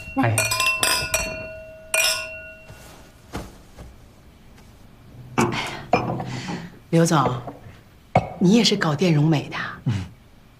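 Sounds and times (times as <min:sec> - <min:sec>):
glasses clinking in a toast: 0:00.0 - 0:03.1, 0:05.4 - 0:08.4
speech: 0:00.2 - 0:00.6, 0:06.9 - 0:07.5, 0:08.4 - 0:10.1.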